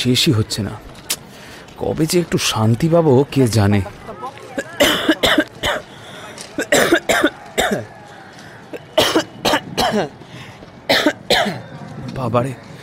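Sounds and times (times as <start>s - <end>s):
speech: 0.0s - 1.0s, 1.8s - 4.0s, 9.9s - 10.2s, 12.2s - 12.7s
person coughing persistently: 4.6s - 5.8s, 6.6s - 7.8s, 9.0s - 10.1s, 10.9s - 11.6s.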